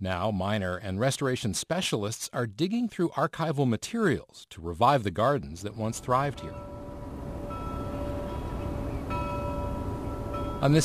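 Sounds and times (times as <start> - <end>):
speech: 0.0 - 6.7, 10.6 - 10.8
buoy bell tolling: 6.3 - 10.8.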